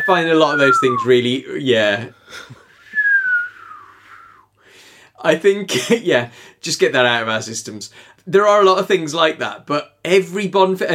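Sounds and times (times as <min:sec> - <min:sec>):
slide whistle tone gliding downward in pitch: 0:00.0 - 0:01.2, 0:02.8 - 0:04.5
speech: 0:00.0 - 0:02.6, 0:05.2 - 0:10.9.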